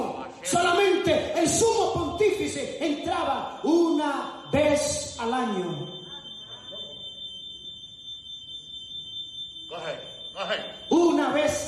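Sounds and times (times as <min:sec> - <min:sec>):
piercing high-pitched alarm tone: 0:00.0 - 0:11.6
speech: 0:00.4 - 0:06.0.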